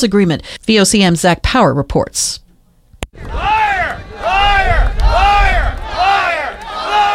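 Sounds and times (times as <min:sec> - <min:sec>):
speech: 0:00.0 - 0:02.4
large protest crowd chanting and booing in rhythmic shouts: 0:03.2 - 0:07.1.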